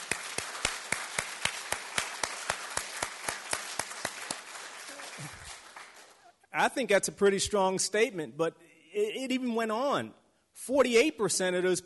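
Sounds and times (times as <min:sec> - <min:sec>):
audience applauding: 0:00.0 - 0:06.4
speech: 0:06.6 - 0:11.8.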